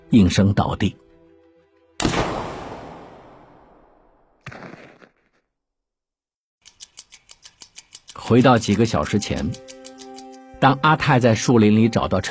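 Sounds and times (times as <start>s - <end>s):
speech: 0.1s - 1.0s, 8.3s - 9.7s, 10.6s - 12.2s
second gunshot burst: 2.0s - 3.8s, 4.4s - 5.1s
gunshot: 2.0s - 5.2s
run of evenly spaced clicks: 6.6s - 10.5s.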